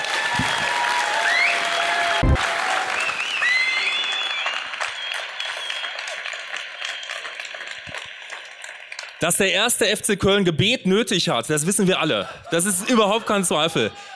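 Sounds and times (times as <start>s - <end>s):
audience applause: 0.0s - 10.2s
whoops and calls from the audience: 0.1s - 6.0s
speech: 9.2s - 14.1s
laughter: 11.8s - 14.1s.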